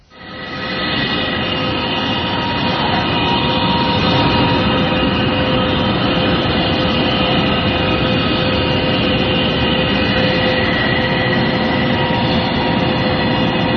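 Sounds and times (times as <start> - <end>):
mysterious low metallic hum recorded in Canada: 0.0 - 13.7.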